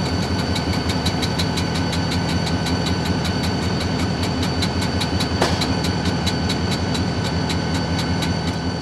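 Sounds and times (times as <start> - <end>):
automatic brake setting: 0.2 - 8.6.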